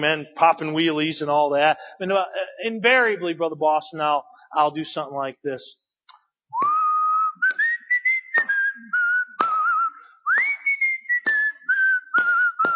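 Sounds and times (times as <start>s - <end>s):
speech: 0.0s - 5.8s
person whistling a slow hymn-like melody: 6.6s - 12.7s.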